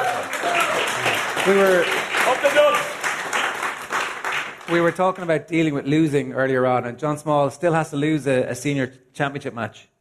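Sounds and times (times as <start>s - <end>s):
people calling out and cheering: 0.0s - 4.0s
crowd applauding: 0.0s - 5.4s
speech: 1.4s - 3.0s, 4.7s - 9.9s.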